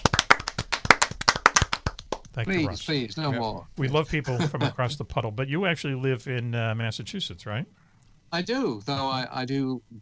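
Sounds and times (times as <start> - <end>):
small group clapping: 0.0 - 2.6
speech: 2.4 - 10.0.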